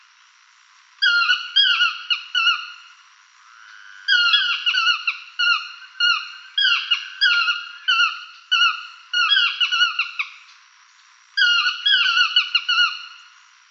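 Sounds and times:
Yellow-throated Toucan singing nasal yelps: 1.0 - 2.7, 4.1 - 10.2, 11.4 - 13.1.

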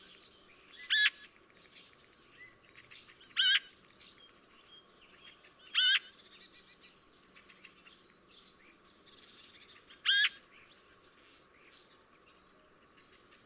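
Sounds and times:
Eurasian magpie rasping calls: 3.4 - 3.6, 10.1 - 10.4.

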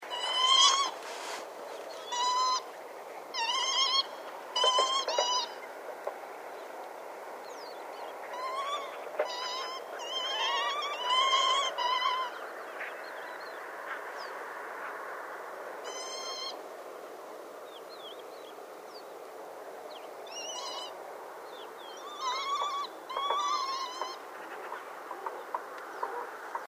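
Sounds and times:
northern lapwing calling: 0.0 - 5.8, 7.5 - 14.3, 15.8 - 16.6, 20.0 - 26.6.

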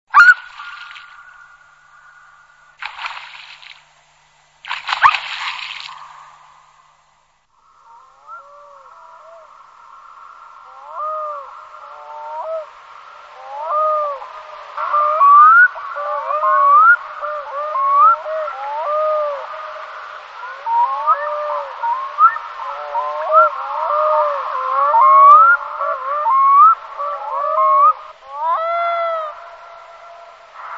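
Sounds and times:
Arctic loon calling: 0.1 - 3.8, 4.9 - 6.6, 7.7 - 30.7.

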